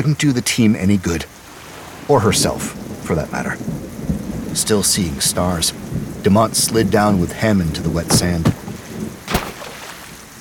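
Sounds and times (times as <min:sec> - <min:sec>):
speech: 0:00.0 - 0:01.4, 0:02.1 - 0:03.9, 0:04.5 - 0:08.6
heavy rain pouring during a storm on a foggy shore: 0:00.6 - 0:10.3
single sharp crack: 0:08.1 - 0:10.3.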